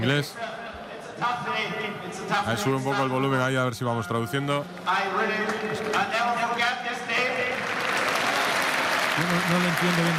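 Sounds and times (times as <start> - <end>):
speech: 0.0 - 0.6, 1.2 - 7.2, 9.2 - 10.1
large audience applauding: 7.2 - 10.1.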